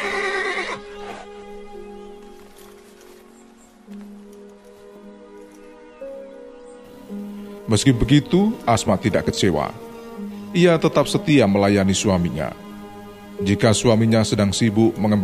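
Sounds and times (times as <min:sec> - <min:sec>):
horse whinny: 0:00.0 - 0:01.4
faint patter: 0:02.1 - 0:05.7
speech: 0:07.7 - 0:09.9, 0:10.5 - 0:12.7, 0:13.4 - 0:15.2.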